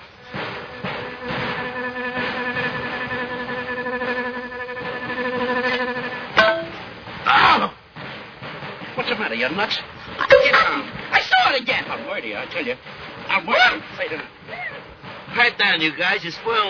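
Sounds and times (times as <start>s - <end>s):
mosquito buzzing: 0.0s - 6.4s
rustling noise: 0.0s - 16.6s
speech: 9.4s - 9.9s, 12.2s - 14.3s, 15.4s - 16.6s.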